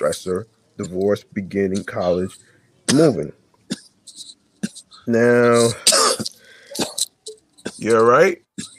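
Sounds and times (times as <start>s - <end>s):
speech: 0.0s - 3.4s, 5.0s - 5.9s, 7.8s - 8.7s
person clearing throat: 2.9s - 8.0s, 8.6s - 8.7s
person coughing harshly: 2.9s - 8.0s, 8.6s - 8.7s.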